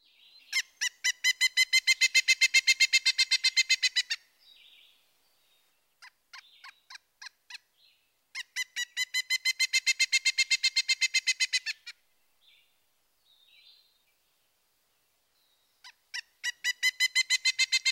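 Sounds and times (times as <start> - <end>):
pileated woodpecker calling: 0.4 - 4.8, 5.9 - 12.0, 15.7 - 17.9.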